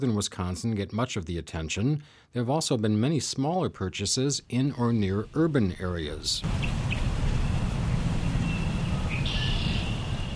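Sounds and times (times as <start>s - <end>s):
speech: 0.0s - 7.3s
Pike River water flowing: 6.4s - 10.3s
steady low rumble of nearby traffic: 6.4s - 10.3s
high thin bird chirps: 6.5s - 10.3s.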